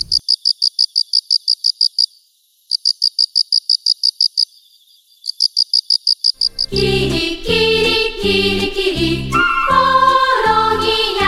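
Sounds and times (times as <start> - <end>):
Haraokame cricket chirping: 0.0 - 6.8
music: 6.7 - 11.2.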